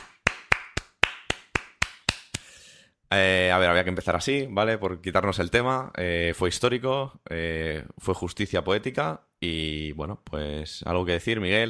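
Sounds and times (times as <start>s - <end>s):
single person clapping hands: 0.0s - 2.6s
speech: 3.1s - 11.6s.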